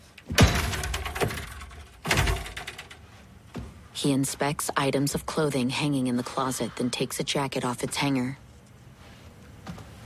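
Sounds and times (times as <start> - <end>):
door kicked open: 0.2 - 2.8
speech: 4.0 - 8.4.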